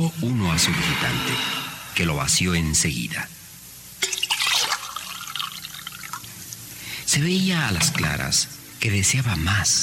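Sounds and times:
speech: 0.0s - 3.4s, 7.1s - 9.8s
tea pouring into drinking glasses: 4.0s - 6.4s.

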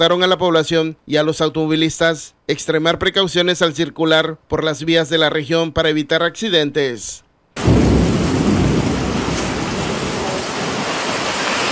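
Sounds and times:
speech: 0.0s - 7.2s
heavy rain pouring: 7.6s - 11.7s.

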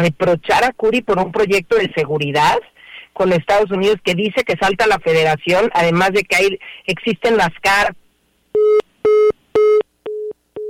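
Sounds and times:
speech: 0.0s - 8.0s
telephone busy signal beeps after a dropped call: 8.6s - 10.6s.

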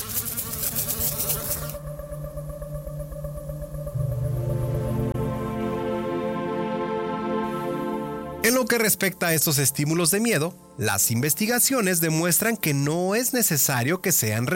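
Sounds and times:
bees buzzing: 0.0s - 8.4s
speech: 8.5s - 14.5s.

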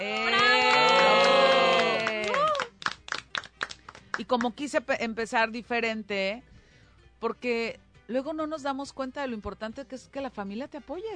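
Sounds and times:
crowd cheering and whooping: 0.0s - 2.7s
scattered uneven clapping: 0.0s - 4.6s
speech: 4.2s - 6.5s, 7.2s - 11.1s.

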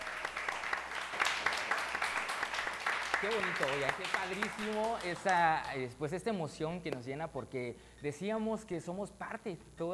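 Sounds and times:
audience applause: 0.0s - 5.8s
speech: 3.2s - 9.9s.

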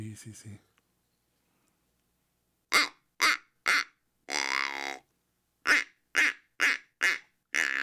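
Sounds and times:
speech: 0.0s - 0.7s
duck quacking: 2.7s - 5.0s, 5.7s - 7.8s.

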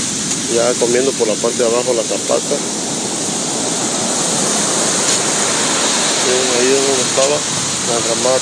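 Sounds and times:
heavy ocean surf crashing on beach on the Costa Grande of Guerrero during hurricane: 0.0s - 8.3s
speech: 0.5s - 2.9s, 6.6s - 8.3s.

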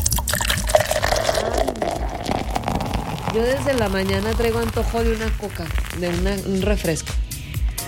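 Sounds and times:
beer pouring from a can: 0.0s - 6.4s
fizzy splashing of poured beer: 0.3s - 6.6s
speech: 3.4s - 7.2s.

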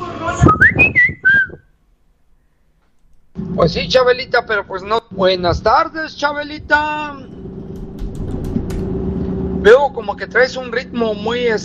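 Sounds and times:
person whistling a short loud tune of gliding notes: 0.4s - 1.7s
speech: 3.6s - 7.4s, 9.6s - 11.6s.

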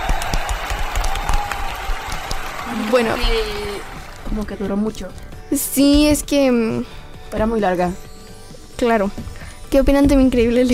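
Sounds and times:
applause from a group of listeners after a story reading: 0.0s - 4.3s
speech: 2.9s - 3.6s, 4.3s - 8.0s, 8.8s - 10.7s.

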